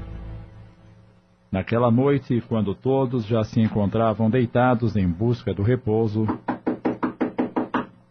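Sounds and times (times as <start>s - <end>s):
speech: 1.6s - 6.5s
knocking on a wooden bedroom door: 6.3s - 7.9s.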